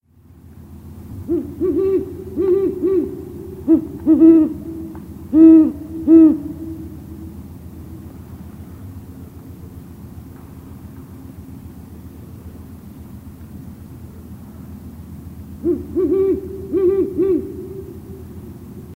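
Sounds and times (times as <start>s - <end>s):
great horned owl: 1.2s - 8.0s, 15.5s - 18.9s.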